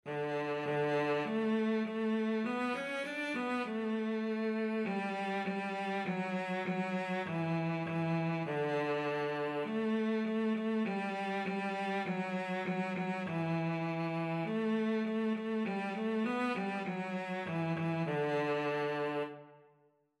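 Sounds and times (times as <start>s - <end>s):
cello playing a nursery rhyme: 0.1s - 19.7s.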